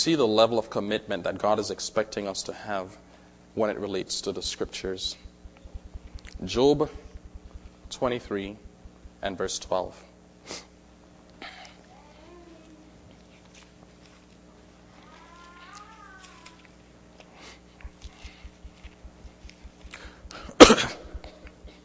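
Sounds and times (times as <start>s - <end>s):
speech: 0.0s - 5.3s, 6.4s - 7.0s, 7.9s - 8.6s, 9.2s - 10.7s
steady low hum: 4.0s - 9.8s, 17.8s - 21.8s
faint rhythmic thumps: 4.3s - 9.7s, 17.8s - 21.8s
person coughing: 20.3s - 21.8s.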